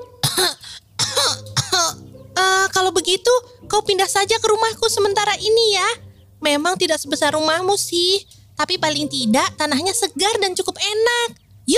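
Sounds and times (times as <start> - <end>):
harsh raspy coughs: 0.2 - 2.0
speech: 2.9 - 11.7.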